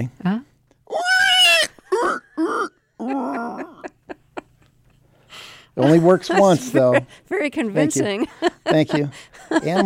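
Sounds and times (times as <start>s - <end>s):
speech: 0.0s - 0.4s, 5.9s - 9.8s
person doing a loud shrill pig-squeal imitation: 0.9s - 3.8s
laughter: 2.4s - 5.0s, 5.8s - 7.2s, 7.8s - 9.8s.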